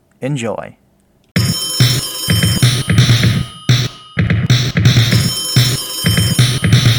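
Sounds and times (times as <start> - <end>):
telephone at a pizza shop ringing: 1.4 - 6.9.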